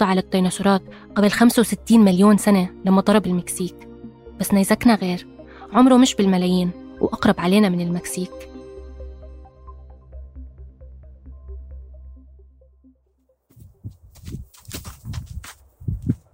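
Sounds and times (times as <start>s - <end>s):
speech: 0.0s - 8.5s
footsteps climbing a hill beside banana farms: 13.5s - 16.3s.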